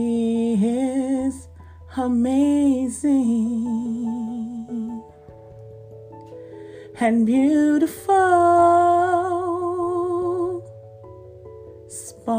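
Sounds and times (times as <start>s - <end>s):
solo voice singing long sustained melodic phrases: 0.0s - 5.3s, 7.0s - 10.7s
soft steady instrumental backing: 0.0s - 12.3s
speech: 2.0s - 4.0s, 7.0s - 9.4s.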